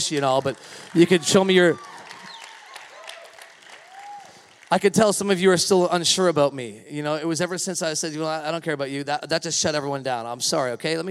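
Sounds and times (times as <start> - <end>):
speech: 0.0 - 2.0, 4.7 - 11.0
audience clapping: 0.0 - 5.6.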